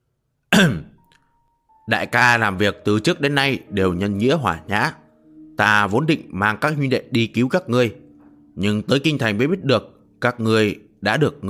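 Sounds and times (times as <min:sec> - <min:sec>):
man giving a dry cough and clearing throat: 0:00.5 - 0:01.0
speech: 0:00.6 - 0:00.9, 0:01.9 - 0:05.0, 0:05.6 - 0:08.0, 0:08.6 - 0:11.4.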